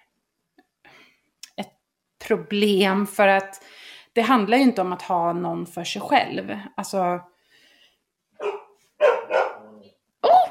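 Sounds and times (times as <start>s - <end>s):
speech: 2.3s - 7.3s
dogs barking: 8.4s - 9.9s.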